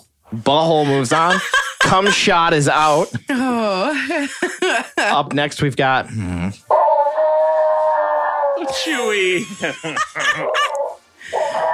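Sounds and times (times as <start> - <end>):
speech: 0.3 - 6.8, 8.6 - 10.8
laughter: 0.9 - 5.2, 8.9 - 11.4
dog growling with high strained yelping and whining cries: 6.7 - 8.9.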